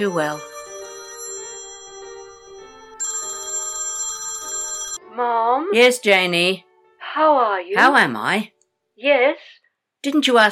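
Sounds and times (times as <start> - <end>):
speech: 0.0 - 0.5, 5.2 - 10.5
telephone ringing with electronic tone: 0.0 - 5.0.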